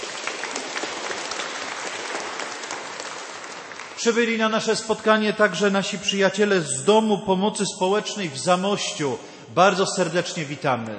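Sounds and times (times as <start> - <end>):
large audience at a church gathering clapping: 0.0 - 4.0
speech: 4.0 - 10.9.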